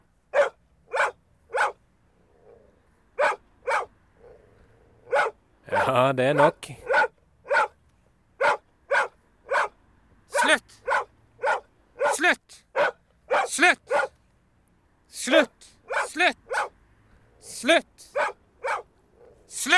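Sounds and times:
dog barking: 0:00.3 - 0:01.8, 0:03.2 - 0:05.4, 0:06.4 - 0:07.8, 0:08.4 - 0:14.2, 0:15.9 - 0:16.8, 0:18.1 - 0:19.4
speech: 0:05.9 - 0:07.0.

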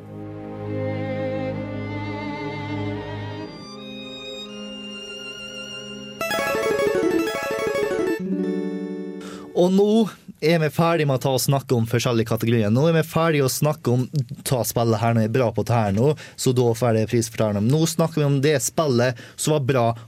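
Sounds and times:
orchestral-style video game soundtrack music: 0:00.1 - 0:09.5
speech: 0:09.6 - 0:20.0.

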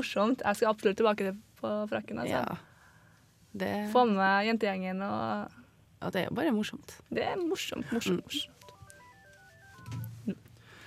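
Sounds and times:
speech: 0:00.0 - 0:02.7, 0:03.5 - 0:08.6
telephone dialing tones of outgoing call: 0:08.1 - 0:10.3.

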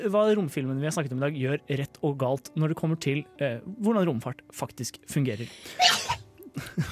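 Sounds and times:
speech: 0:00.0 - 0:06.9
person sneezing: 0:05.7 - 0:06.2.

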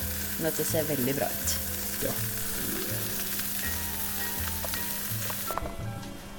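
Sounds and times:
mackerel sizzling on a hot plate: 0:00.0 - 0:05.6
speech: 0:00.4 - 0:02.4.

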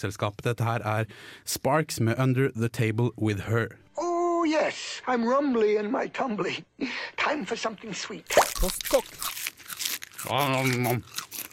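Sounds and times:
speech: 0:00.0 - 0:03.8, 0:04.4 - 0:09.4, 0:10.2 - 0:11.5
person crunching while eating: 0:08.3 - 0:11.5.

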